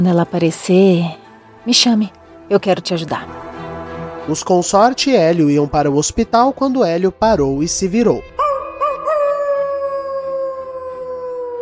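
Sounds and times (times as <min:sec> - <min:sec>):
speech: 0:00.0 - 0:03.5, 0:04.2 - 0:08.3
wolf howling: 0:08.3 - 0:11.6.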